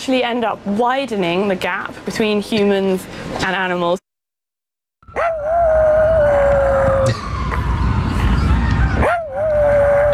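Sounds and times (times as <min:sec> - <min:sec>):
outdoor city noise: 0:00.0 - 0:04.0, 0:05.0 - 0:10.1
speech: 0:00.0 - 0:04.0
small dog howling at sirens: 0:05.1 - 0:07.2, 0:09.0 - 0:10.1.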